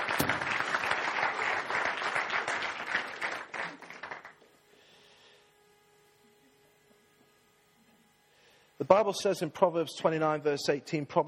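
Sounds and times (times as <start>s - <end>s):
crowd applauding with dense steady clapping: 0.0s - 4.4s
speech: 8.8s - 11.2s.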